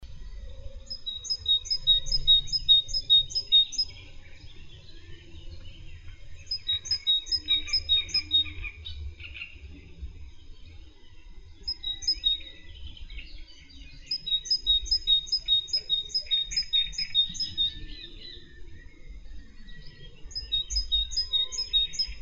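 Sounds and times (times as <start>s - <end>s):
great tit singing: 0.0s - 22.2s
great tit calls: 0.9s - 9.8s, 11.6s - 22.2s.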